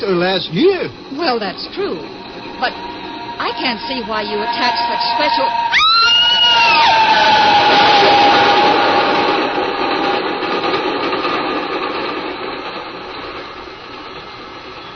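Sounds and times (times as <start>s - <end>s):
speech: 0.0s - 6.1s
train rushing past: 0.0s - 14.9s
train whistle-like tone dropping in pitch: 2.8s - 9.0s.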